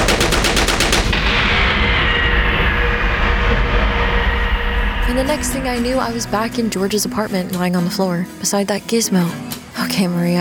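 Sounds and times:
rapid automatic gunfire: 0:00.0 - 0:01.3
steady heavy roar of noise: 0:00.0 - 0:07.6
speech: 0:05.2 - 0:10.3.

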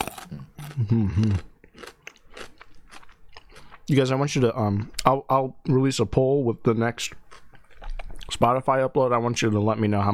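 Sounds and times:
crunching while chewing a vinegar-soaked crisp snack: 0:00.0 - 0:03.8
speech: 0:00.9 - 0:01.5, 0:03.9 - 0:07.2, 0:08.4 - 0:10.1.

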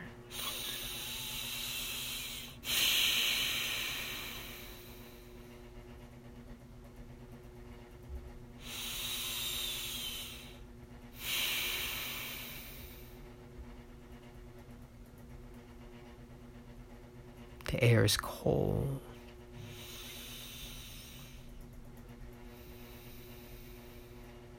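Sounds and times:
heavy forceful breaths through the nose: 0:00.3 - 0:05.6, 0:08.6 - 0:13.4, 0:19.5 - 0:21.6, 0:22.4 - 0:24.5
speech: 0:17.8 - 0:19.1.

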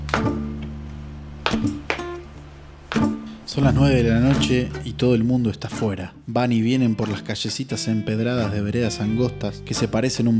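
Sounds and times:
folk dance zapateo footwork stomping on a hard cement floor: 0:00.0 - 0:00.7, 0:01.4 - 0:02.2, 0:02.9 - 0:03.3
speech: 0:01.5 - 0:01.9, 0:03.5 - 0:10.3.

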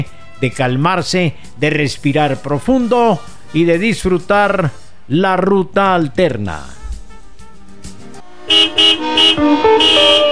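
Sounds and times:
speech: 0:00.0 - 0:06.8, 0:09.3 - 0:10.3
car horns honking in heavy traffic: 0:08.5 - 0:10.3.

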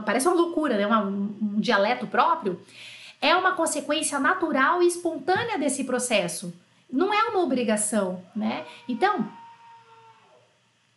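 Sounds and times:
speech: 0:00.0 - 0:09.4
person screaming on a city street: 0:08.4 - 0:10.4.

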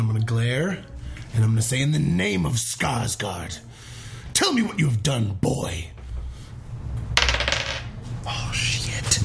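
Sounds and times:
speech: 0:00.0 - 0:06.0
low room hum: 0:00.0 - 0:09.2
dice clattering onto a hard tabletop: 0:07.2 - 0:07.9.

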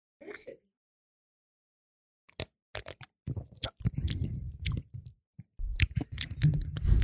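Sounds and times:
swallowing gulps of hoppy beer: 0:03.3 - 0:07.0
person slurping a hoppy beer: 0:03.6 - 0:04.8, 0:05.8 - 0:07.0.

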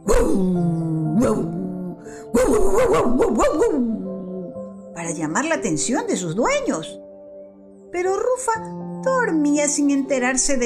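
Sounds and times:
speech: 0:00.1 - 0:01.6, 0:02.3 - 0:04.0, 0:05.0 - 0:07.1, 0:07.9 - 0:10.6
dogs yelping and barking fiercely: 0:02.4 - 0:03.8.

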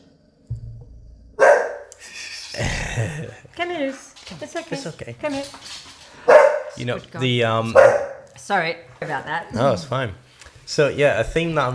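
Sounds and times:
dog barking: 0:01.4 - 0:01.9, 0:06.2 - 0:06.8, 0:07.7 - 0:08.3
speech: 0:02.6 - 0:11.7.

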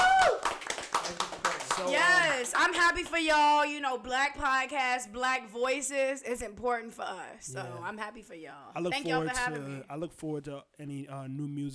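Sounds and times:
descending whoop or whistle: 0:00.0 - 0:00.4
several hands clapping: 0:00.0 - 0:03.2
speech: 0:01.8 - 0:11.7.

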